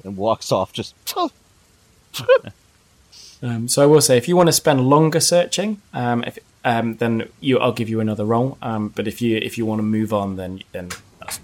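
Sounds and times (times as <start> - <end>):
speech: 0.0 - 1.4, 2.1 - 2.6, 3.2 - 11.4
human voice imitating a cat sneeze: 2.2 - 2.5.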